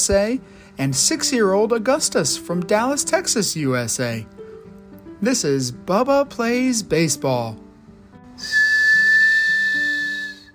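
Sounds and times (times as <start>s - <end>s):
speech: 0.0s - 4.5s, 5.2s - 7.6s, 8.4s - 8.6s
train steam whistle blast: 8.4s - 10.5s.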